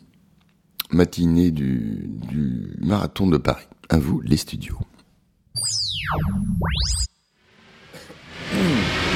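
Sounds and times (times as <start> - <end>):
speech: 1.0 - 4.9, 6.1 - 7.2, 8.6 - 9.0
swooping electronic sound effect: 5.6 - 7.2.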